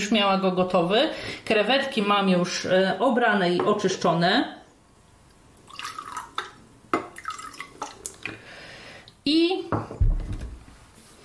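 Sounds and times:
speech: 0.0 - 4.6, 9.3 - 10.0
juice and water poured and splashing into a container: 5.6 - 8.4.

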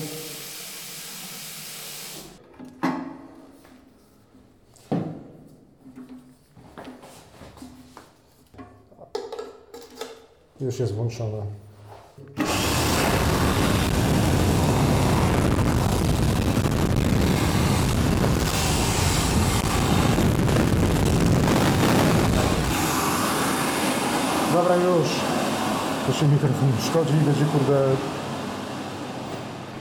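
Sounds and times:
electric hand dryer running: 0.0 - 2.4, 12.4 - 29.7
tap water running into a sink: 0.0 - 2.4
speech: 10.6 - 11.7, 24.7 - 25.2, 26.1 - 28.2.

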